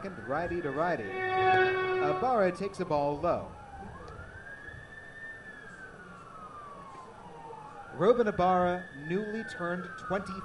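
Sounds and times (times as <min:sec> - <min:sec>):
speech: 0:00.0 - 0:03.6, 0:08.0 - 0:10.4
steady dense roar: 0:00.0 - 0:04.4
ambulance siren passing outside a ballpark beyond the right field wall: 0:00.0 - 0:10.4.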